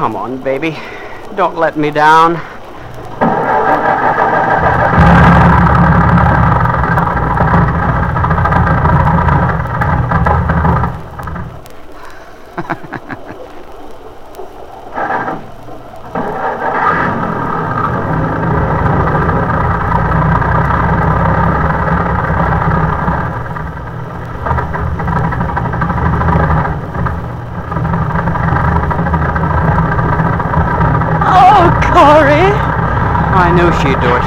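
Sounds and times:
speech: 0:00.0 - 0:02.5
large bus engine idling and revving before driving through a flooded area: 0:02.8 - 0:11.6, 0:16.2 - 0:34.2
laughter: 0:12.5 - 0:13.6.

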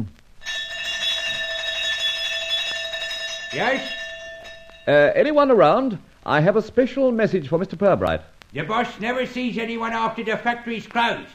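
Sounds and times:
electric doorbell ringing: 0:00.4 - 0:05.2
speech: 0:03.5 - 0:04.0, 0:04.8 - 0:11.3.

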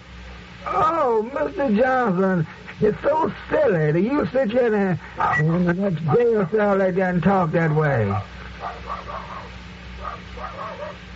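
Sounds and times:
hiss: 0:00.0 - 0:11.1
speech: 0:00.6 - 0:09.1
dog barking: 0:05.2 - 0:06.5, 0:08.1 - 0:11.1.

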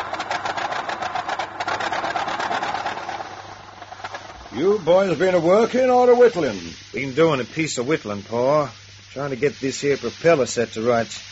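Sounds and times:
old Ford Model T car engine running as it drives up: 0:00.0 - 0:05.8
speech: 0:04.6 - 0:11.3.

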